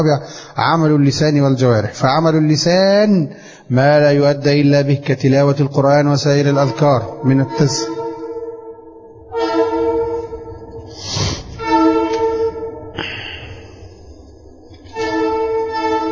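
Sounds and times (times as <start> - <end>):
speech: 0.0 - 7.9
rumble and clatter of a passing train: 5.8 - 16.0
train horn blasts: 6.3 - 14.2, 14.8 - 16.0.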